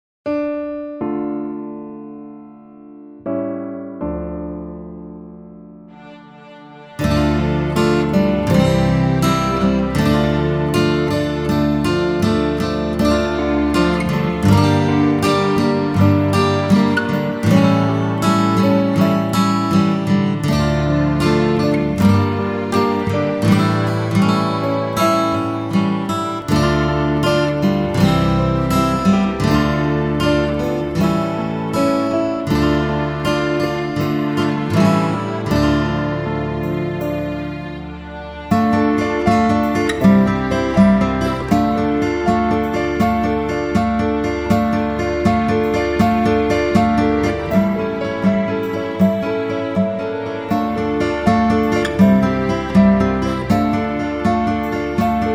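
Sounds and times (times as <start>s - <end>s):
instrumental music: 0.3s - 55.3s.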